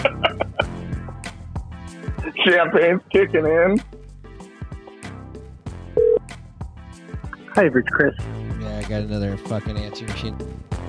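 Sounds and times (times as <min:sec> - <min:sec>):
laughter: 0:00.0 - 0:00.9
speech: 0:02.4 - 0:04.0, 0:07.6 - 0:10.7
telephone dialing tones: 0:06.0 - 0:06.2.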